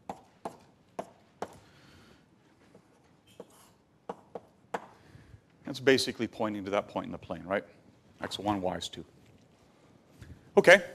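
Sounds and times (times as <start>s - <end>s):
writing on a board drawing a simple diagram during a lecture: 0.0s - 1.6s, 2.7s - 5.0s
speech: 5.7s - 9.2s, 10.6s - 10.9s.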